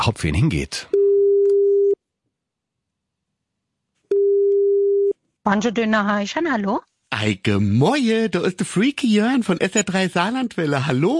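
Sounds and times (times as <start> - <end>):
speech: 0.0 - 0.9, 5.5 - 11.1
telephone ringback tone on an outgoing call: 4.1 - 5.1.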